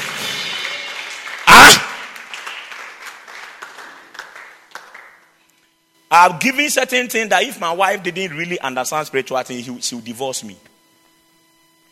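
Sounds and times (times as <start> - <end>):
audience clapping in a reverberant room: 0.0 - 5.4
sharp loud burst of noise: 1.5 - 2.1
speech: 6.2 - 10.7.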